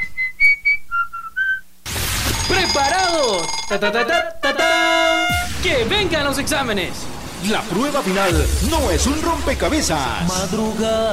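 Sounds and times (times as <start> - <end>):
person whistling a short clear tune: 0.0 - 1.7
speech: 2.5 - 11.1
burst of broad noise: 5.0 - 11.1.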